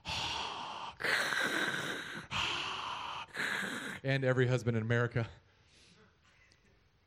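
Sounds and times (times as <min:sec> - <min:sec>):
voice imitating heavy raspy mouth breathing: 0:00.0 - 0:04.1
speech: 0:04.0 - 0:05.4.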